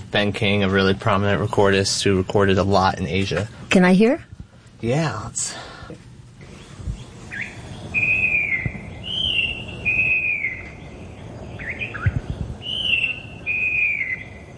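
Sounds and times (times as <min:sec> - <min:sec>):
steady cassette tape hiss: 0:00.0 - 0:14.5
speech: 0:00.1 - 0:06.0
falcated wren babbler song: 0:06.4 - 0:14.5.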